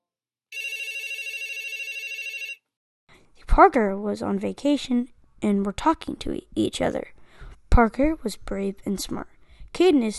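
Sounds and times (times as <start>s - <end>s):
telephone bell ringing: 0.5s - 2.7s
speech: 3.6s - 7.2s, 7.8s - 10.1s.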